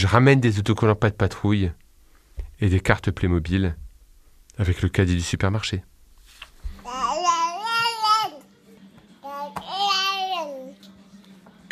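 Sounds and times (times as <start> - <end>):
speech: 0.0 - 1.8, 2.6 - 3.8, 4.6 - 5.9
faint steady hum: 0.0 - 9.3
baby girl babbling: 6.8 - 8.5, 9.2 - 10.8.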